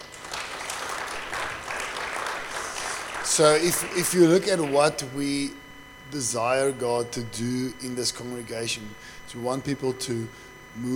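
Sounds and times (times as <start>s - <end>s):
audience applause: 0.0s - 4.8s
speech: 3.3s - 10.9s.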